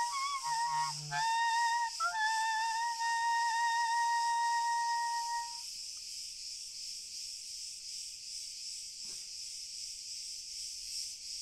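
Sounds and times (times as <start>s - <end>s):
chorus of crickets trilling: 0.0s - 11.3s.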